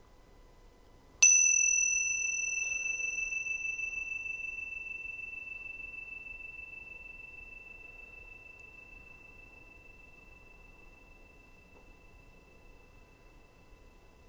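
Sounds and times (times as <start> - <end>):
faint steady hum: 0.0 - 14.2
bell struck once: 1.2 - 12.0.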